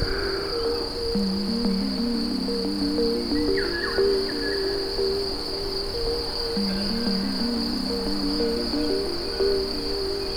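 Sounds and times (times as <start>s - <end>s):
crow-like caws: 0.0s - 1.1s
crickets chirping: 0.0s - 10.3s.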